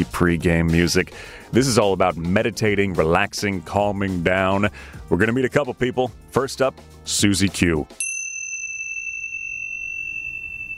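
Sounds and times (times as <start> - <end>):
speech: 0.0 - 8.1
Tibetan chime ringing with a clear high tone: 8.0 - 10.7.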